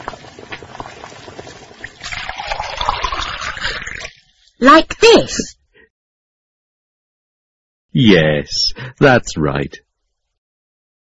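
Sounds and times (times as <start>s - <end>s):
boiling water bubbling: 0.0s - 4.6s
speech: 4.6s - 5.5s, 8.0s - 9.8s.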